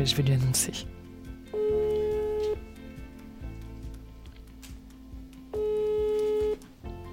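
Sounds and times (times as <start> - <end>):
speech: 0.0 - 1.0
soft music: 0.0 - 7.1
telephone ringback tone: 1.5 - 2.6, 5.6 - 6.6.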